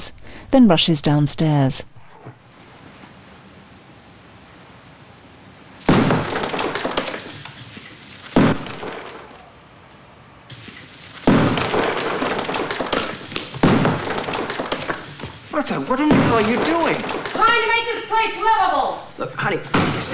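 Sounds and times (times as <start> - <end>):
speech: 0.0 - 1.9
sledgehammer striking a wall inside a house: 5.8 - 7.5, 8.4 - 9.3, 11.2 - 17.9, 19.7 - 20.1
falling debris and crumbling plaster rattling: 5.8 - 9.6, 10.5 - 20.1.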